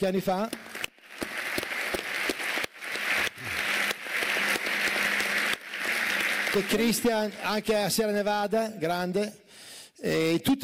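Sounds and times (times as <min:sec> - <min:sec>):
speech: 0:00.0 - 0:00.7, 0:06.6 - 0:09.4, 0:10.0 - 0:10.6
crowd applauding: 0:00.5 - 0:07.9.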